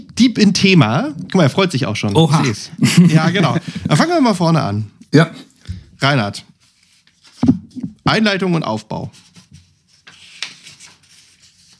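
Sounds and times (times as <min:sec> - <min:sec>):
speech: 0:00.2 - 0:06.5, 0:07.4 - 0:09.2
laughter: 0:02.1 - 0:04.3
pages being leafed through: 0:09.9 - 0:11.7.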